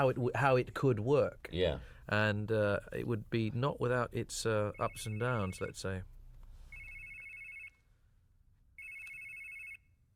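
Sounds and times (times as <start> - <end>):
speech: 0.0 - 6.1
telephone ringing: 6.7 - 7.8, 8.8 - 9.8.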